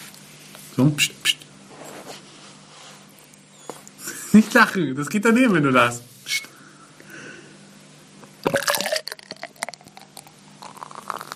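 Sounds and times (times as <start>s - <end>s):
speech: 0.8s - 1.4s, 4.4s - 6.4s
beer splashing and gurgling into a beer glass: 8.4s - 11.3s.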